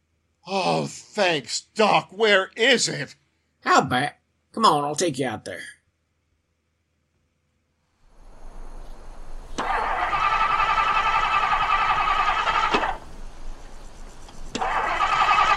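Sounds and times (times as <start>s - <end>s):
speech: 0.5s - 5.8s
old car engine cranking but failing to start: 9.3s - 15.5s.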